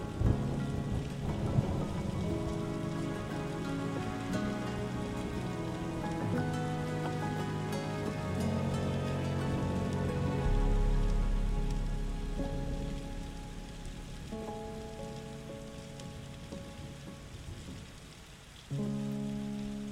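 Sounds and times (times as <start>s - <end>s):
calm sustained music with slow held chords: 0.0s - 19.9s
low rumble of thunder: 0.0s - 19.9s
soft steady rain pattering: 0.0s - 19.9s.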